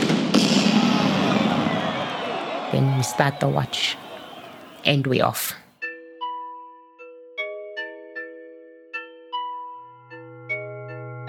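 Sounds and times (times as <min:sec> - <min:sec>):
starting cannon blast at race start: 0:00.0 - 0:02.2
speech: 0:02.8 - 0:04.0, 0:04.8 - 0:05.6.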